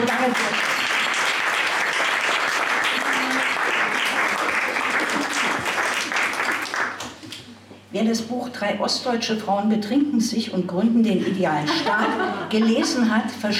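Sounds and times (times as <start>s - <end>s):
audience applause: 0.0s - 7.1s
speech: 7.9s - 13.5s
laughter: 11.6s - 13.2s.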